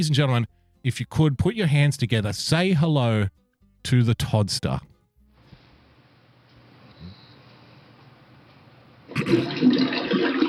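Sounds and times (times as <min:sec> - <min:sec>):
speech: 0:00.0 - 0:04.9, 0:09.3 - 0:10.0
toilet flushing: 0:09.1 - 0:10.4.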